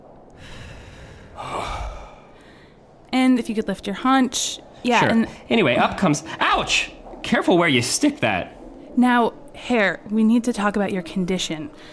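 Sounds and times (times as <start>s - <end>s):
human exhale after a held breath: 0.4s - 2.8s
speech: 3.3s - 11.9s.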